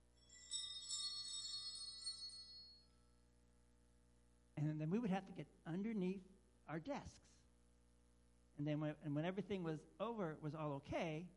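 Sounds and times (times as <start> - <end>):
small high-pitched bell jingling: 0.0 - 3.2
speech: 4.6 - 7.4, 8.6 - 11.3.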